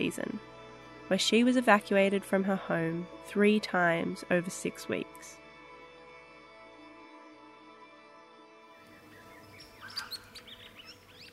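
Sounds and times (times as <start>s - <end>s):
speech: 0.0s - 5.4s
rainbow lorikeet calls: 9.0s - 11.3s.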